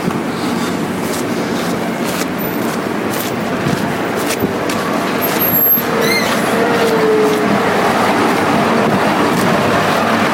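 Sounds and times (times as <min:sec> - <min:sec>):
vehicle rumble from inside a moving vehicle: 0:00.0 - 0:10.3
vehicle brake squeal: 0:01.4 - 0:03.4, 0:05.0 - 0:09.0.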